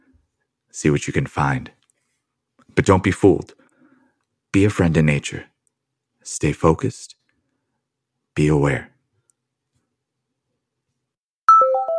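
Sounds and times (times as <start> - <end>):
speech: 0.7 - 1.8, 2.8 - 3.6, 4.5 - 5.5, 6.2 - 7.2, 8.4 - 8.9
mobile phone ringtone with electronic four-tone melody: 11.5 - 11.9.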